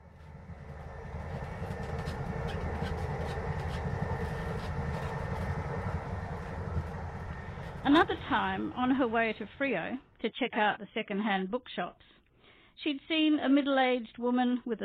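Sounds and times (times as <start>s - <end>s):
train rolling along the rails heard from inside the carriage: 0.0s - 9.6s
speech: 7.9s - 12.1s, 12.8s - 14.8s.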